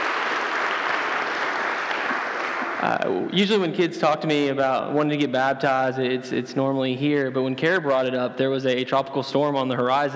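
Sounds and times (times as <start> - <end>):
church congregation applauding: 0.0 - 3.2
speech: 2.8 - 10.1.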